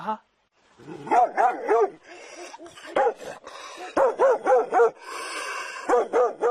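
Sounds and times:
speech: 0.0s - 2.0s
biting dog barking: 1.0s - 5.0s, 5.8s - 6.5s.

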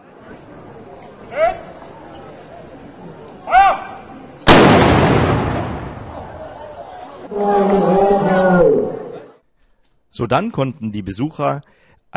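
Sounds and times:
crowd voices: 0.0s - 9.4s
ceremonial cannon blast: 4.5s - 6.5s
speech: 10.2s - 12.1s.

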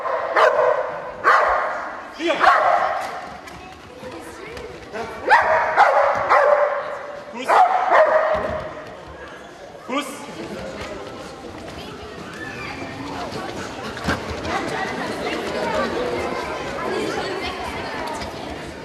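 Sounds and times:
dog barking at a demonstration: 0.0s - 1.8s, 2.4s - 3.0s, 5.2s - 6.9s, 7.5s - 8.5s
murmur of voices in a large space: 0.0s - 18.8s.

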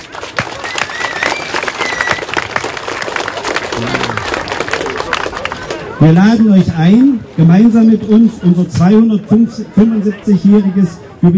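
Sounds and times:
audience applause: 0.0s - 6.0s
faint murmur of audience voices: 3.6s - 11.3s
speech: 3.8s - 4.1s, 6.0s - 11.3s.

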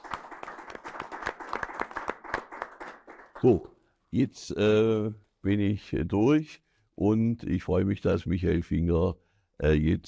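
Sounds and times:
audience at an event applauding: 0.0s - 3.6s
speech: 3.4s - 10.0s.

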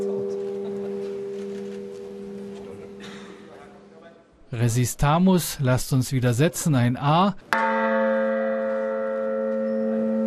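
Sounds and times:
church bell from a tuned peal ringing: 0.0s - 3.5s, 7.5s - 10.2s
speech: 4.5s - 7.5s.

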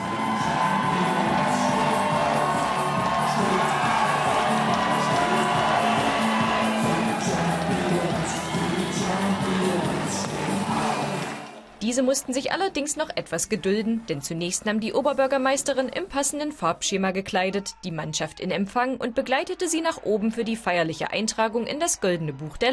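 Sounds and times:
scattered whoops and shouts: 0.0s - 9.9s
large crowd of fans cheering: 0.0s - 11.8s, 19.1s - 22.7s
speech: 12.0s - 22.7s.

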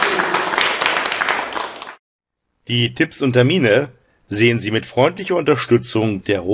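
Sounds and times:
audience applause: 0.0s - 2.0s
speech: 2.7s - 6.5s.

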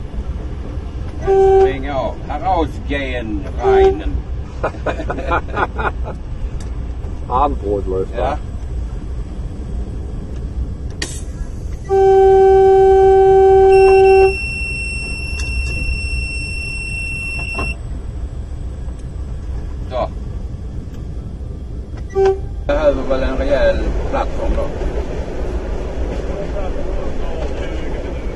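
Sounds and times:
low rumble of a moving train: 0.0s - 28.3s
diesel locomotive signal horn blast: 1.2s - 2.2s, 3.5s - 4.3s, 11.8s - 17.8s, 22.1s - 23.0s
speech: 1.2s - 6.3s, 7.3s - 8.5s
laughter: 4.5s - 6.2s, 23.8s - 24.8s
fainter higher tone: 11.8s - 17.9s.

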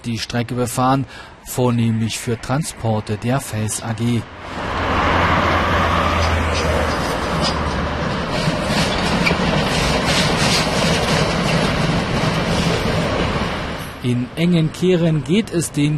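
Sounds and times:
speech: 0.0s - 4.8s, 14.0s - 15.9s
rhythmic clanking from the rails: 6.0s - 15.7s
class 95 steam locomotive chugging past: 6.8s - 13.8s.

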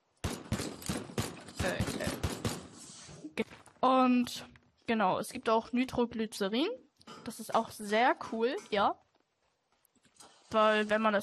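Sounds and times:
shotgun and pistol gunfire in a video game: 0.2s - 2.9s
speech: 3.8s - 9.0s, 10.5s - 11.2s.

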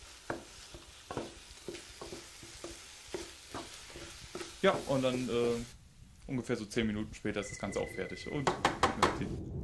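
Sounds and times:
utensil scraping and stirring egg mixture in a pan: 0.0s - 5.6s
mixture of eggs, milk and seasoning sizzling in a pan: 0.0s - 5.8s
speech: 4.6s - 9.5s.

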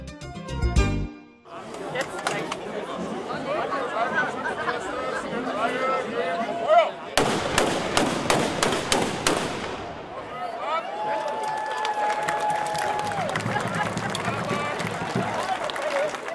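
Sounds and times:
laughter: 1.5s - 7.0s, 13.0s - 16.3s
murmur of an outdoor crowd: 1.5s - 8.1s, 9.6s - 16.3s
ceremonial black-powder salute shots: 7.2s - 10.2s.

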